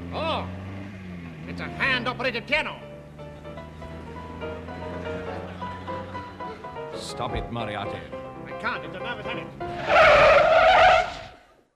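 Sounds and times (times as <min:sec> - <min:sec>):
brakes screeching in a skid: 0:00.0 - 0:06.8, 0:09.0 - 0:11.5
speech: 0:01.6 - 0:02.8, 0:07.0 - 0:10.6.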